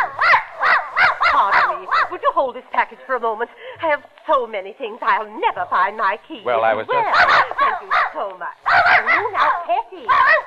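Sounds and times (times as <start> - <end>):
old white poodle yapping: 0.0 - 2.2, 7.0 - 10.4
speech: 2.1 - 10.4.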